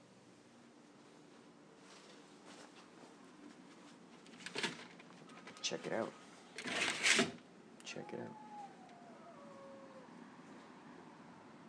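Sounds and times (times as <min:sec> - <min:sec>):
steady hiss of outdoor noise: 0:00.0 - 0:11.6
speech: 0:05.7 - 0:06.2, 0:07.9 - 0:08.4
dog howling outside: 0:07.9 - 0:10.2.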